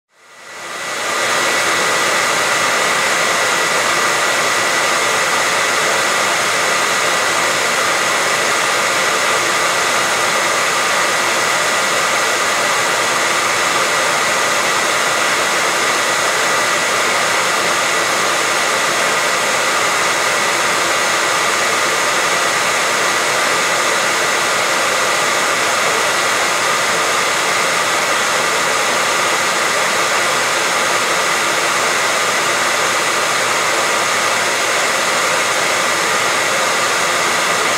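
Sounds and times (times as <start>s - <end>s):
hair dryer white noise: 0.1s - 37.7s.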